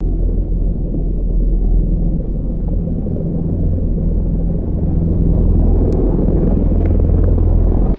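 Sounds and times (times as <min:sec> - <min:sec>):
deep underwater submarine propeller passing by: 0:00.0 - 0:07.9.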